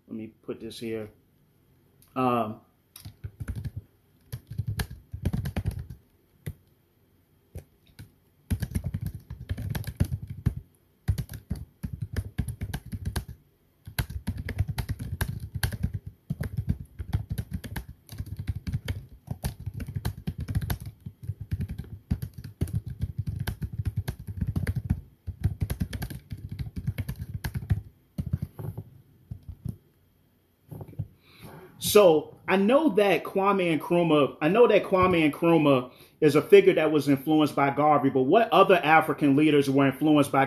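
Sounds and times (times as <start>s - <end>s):
speech: 0.5s - 1.2s, 2.2s - 3.1s, 32.0s - 40.4s
typing on a computer keyboard: 3.0s - 6.6s, 7.6s - 28.6s, 29.3s - 29.8s.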